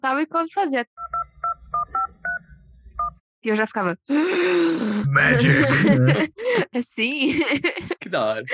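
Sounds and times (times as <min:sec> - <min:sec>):
speech: 0:00.0 - 0:01.2, 0:03.4 - 0:08.5
telephone keypad DTMF tones played as a melody: 0:01.0 - 0:02.4
laughter: 0:05.1 - 0:08.2.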